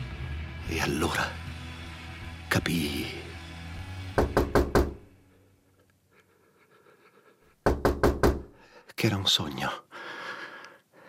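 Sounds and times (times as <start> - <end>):
speech: 0.7 - 1.4, 2.5 - 3.3, 9.0 - 9.9
firm knocking on a bedroom door: 4.2 - 5.0, 7.6 - 8.5.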